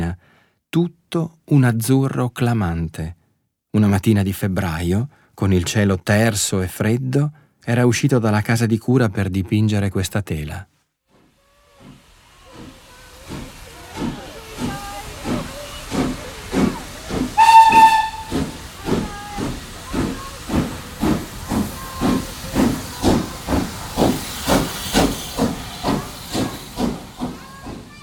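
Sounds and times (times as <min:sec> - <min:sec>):
speech: 0:00.7 - 0:10.7
steam locomotive chugging with hissing puffs: 0:11.2 - 0:28.0
short shrill steam locomotive whistle blast: 0:17.4 - 0:18.6.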